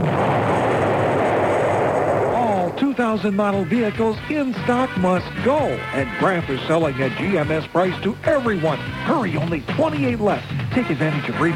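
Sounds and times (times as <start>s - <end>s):
explosion rumble: 0.0s - 4.1s
speech: 3.0s - 11.5s.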